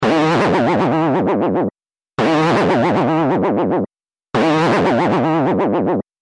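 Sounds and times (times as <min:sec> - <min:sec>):
comedy boing: 0:00.0 - 0:06.1.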